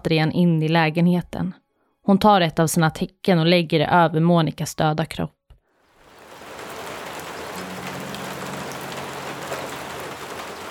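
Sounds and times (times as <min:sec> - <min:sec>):
speech: 0:00.0 - 0:05.4
steady rain pattering on a hard surface: 0:05.7 - 0:10.6.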